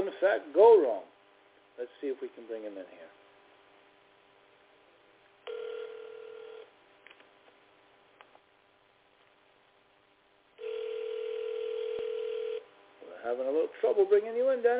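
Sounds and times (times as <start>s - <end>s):
speech: 0.2s - 1.1s, 1.8s - 3.2s, 13.2s - 14.7s
landline telephone dial tone: 5.4s - 6.7s, 10.6s - 12.7s.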